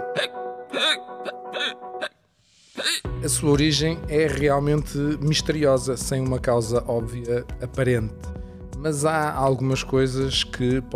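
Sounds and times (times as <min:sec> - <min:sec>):
sharp voiced hiccups: 0:00.0 - 0:02.2, 0:02.8 - 0:03.1
speech: 0:00.2 - 0:02.2, 0:02.9 - 0:10.9.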